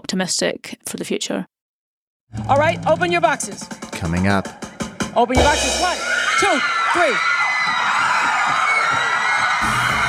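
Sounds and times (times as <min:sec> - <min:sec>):
speech: 0:00.1 - 0:01.6, 0:02.3 - 0:07.3
large studio audience screaming and shrieking with excitement: 0:05.4 - 0:10.0.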